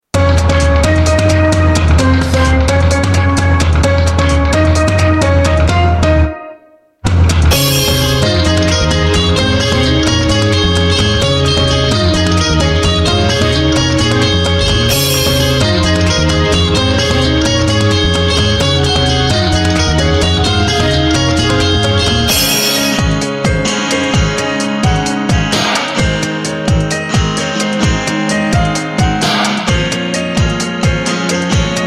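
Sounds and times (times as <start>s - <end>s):
background music melody at 130 BPM: 0.1s - 31.8s.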